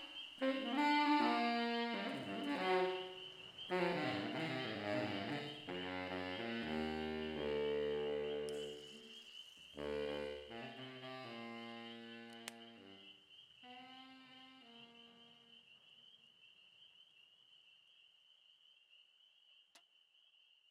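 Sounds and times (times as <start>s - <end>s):
spring peepers chorus: 0.0s - 4.7s, 7.9s - 9.8s, 12.6s - 20.6s
baritone saxophone playing under a train trestle: 0.0s - 9.1s, 9.8s - 13.1s, 13.7s - 15.5s.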